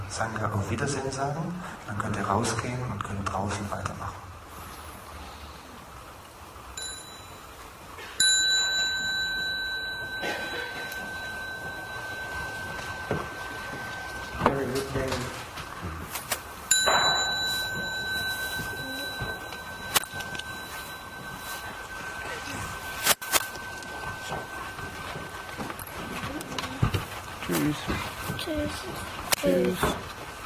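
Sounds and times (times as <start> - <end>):
speech: 0.1 - 4.2
small bell struck during a meditation gathering: 6.8 - 15.6, 16.5 - 30.1.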